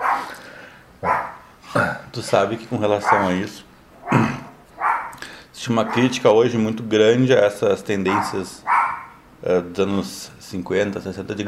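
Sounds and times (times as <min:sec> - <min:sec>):
dog barking: 0:00.0 - 0:00.4, 0:01.0 - 0:01.4, 0:03.0 - 0:03.4, 0:04.0 - 0:05.2, 0:05.8 - 0:06.2, 0:08.1 - 0:09.2
speech: 0:02.2 - 0:04.3, 0:05.6 - 0:08.7, 0:09.4 - 0:11.4.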